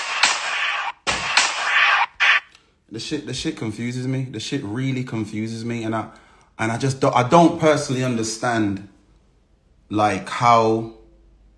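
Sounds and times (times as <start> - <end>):
loud rapid gunshots: 0.0 - 2.5
speech: 2.9 - 9.0, 9.9 - 11.0.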